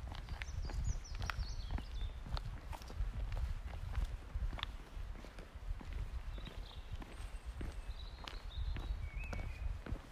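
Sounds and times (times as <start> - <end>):
soft thuds crunching along a path: 0.0 - 10.1
birds singing along the woods: 0.1 - 3.0, 6.0 - 10.1.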